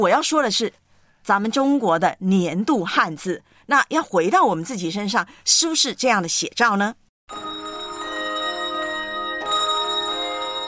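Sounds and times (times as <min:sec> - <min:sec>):
speech: 0:00.0 - 0:07.6
bells ringing with long shimmering tones: 0:07.3 - 0:10.6.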